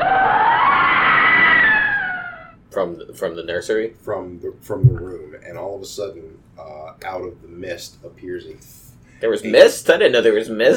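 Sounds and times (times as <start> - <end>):
loud high-pitched piercing shriek: 0.0 - 2.6
speech: 2.8 - 10.7.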